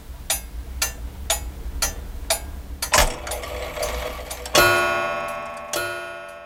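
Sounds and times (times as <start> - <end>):
Bornholm grandfather clock ticking: 0.2 - 6.4
Bornholm grandfather clock striking with ringing chime tones: 2.8 - 6.4.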